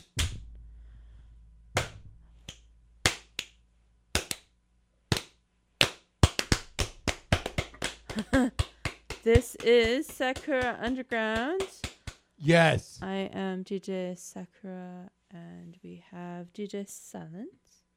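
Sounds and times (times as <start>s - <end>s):
hands clapping in sharp bursts: 0.0s - 0.4s, 1.8s - 3.6s, 4.2s - 4.5s, 5.1s - 13.0s
speech: 8.2s - 11.8s, 12.4s - 17.8s.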